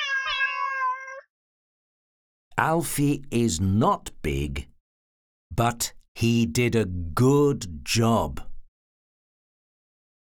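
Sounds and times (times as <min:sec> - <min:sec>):
cat meowing in a long loud tonal call: 0:00.0 - 0:01.3
speech: 0:02.6 - 0:04.7, 0:05.6 - 0:08.5.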